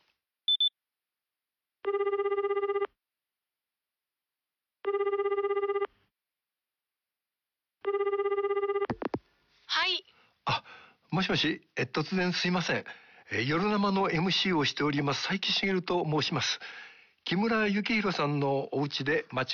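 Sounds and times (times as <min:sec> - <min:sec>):
telephone ringback tone on a call to a private home: 0:01.8 - 0:02.9, 0:04.8 - 0:05.9, 0:07.8 - 0:09.0
speech: 0:11.2 - 0:19.5.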